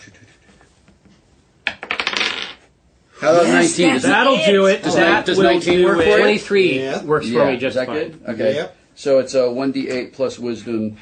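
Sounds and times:
big dice rolling across a hard tabletop: 1.6s - 2.7s
speech: 3.2s - 11.0s.

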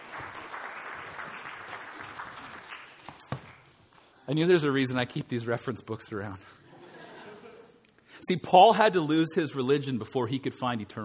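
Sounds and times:
audience applause: 0.0s - 3.7s
speech: 4.3s - 6.6s, 8.3s - 11.0s
laughter: 6.6s - 7.8s.

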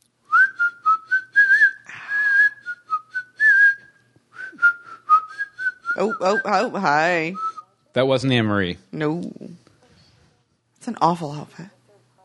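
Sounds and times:
person whistling a tune: 0.3s - 6.6s
breathy burst: 1.8s - 2.5s
speech: 6.0s - 9.6s, 10.8s - 11.8s.

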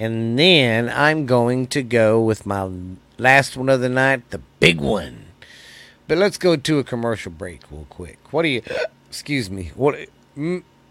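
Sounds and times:
speech: 0.0s - 5.2s, 6.1s - 10.7s
person hiccuping: 8.6s - 9.0s.

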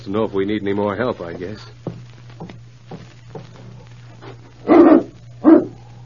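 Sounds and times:
speech: 0.0s - 1.8s
faint steady low hum: 0.0s - 6.0s
dog barking: 4.6s - 5.8s.

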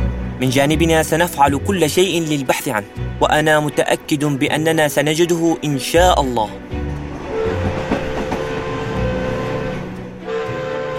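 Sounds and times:
speech: 0.4s - 6.8s
train running on rails: 6.6s - 10.9s
tonal whine: 6.9s - 10.9s.

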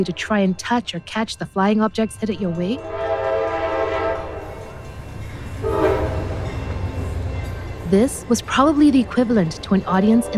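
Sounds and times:
speech: 0.0s - 3.1s, 7.9s - 10.3s
train arriving at a station in La Ciotat rumbling: 0.0s - 10.3s
train horn: 2.7s - 4.5s, 5.6s - 6.5s.

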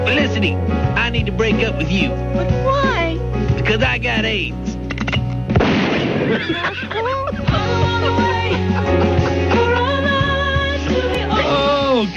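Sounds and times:
speech: 0.1s - 3.1s, 3.7s - 4.7s, 6.4s - 9.1s
gunshot sound effect: 5.5s - 6.5s
laughter: 6.1s - 12.0s.

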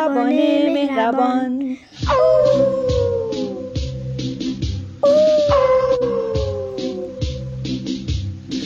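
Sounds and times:
speech: 0.2s - 2.9s
steady rhythmic backing pulse: 1.9s - 8.6s
black wolf howling at night: 2.0s - 4.0s, 5.0s - 7.5s.

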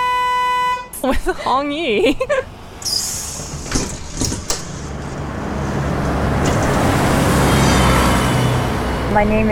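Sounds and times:
bus engine rumble: 0.0s - 9.4s
speech: 1.0s - 3.1s, 9.2s - 9.4s
bus door opening with a pneumatic hiss: 2.8s - 4.9s
bus door clunks: 2.8s - 5.4s.

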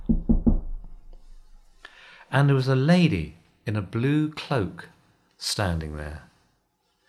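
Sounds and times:
knocking on a wooden door: 0.0s - 1.1s
faint room noise: 0.0s - 7.0s
speech: 2.3s - 6.3s.

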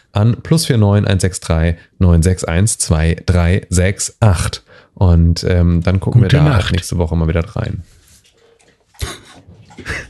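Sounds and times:
speech: 0.1s - 8.0s, 9.0s - 9.2s
dog lapping up water: 8.2s - 10.0s.

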